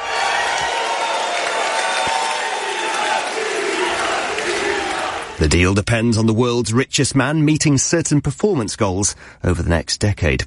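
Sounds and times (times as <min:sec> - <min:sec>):
shareholders cheering at annual meeting: 0:00.0 - 0:05.7
speech: 0:05.4 - 0:10.4.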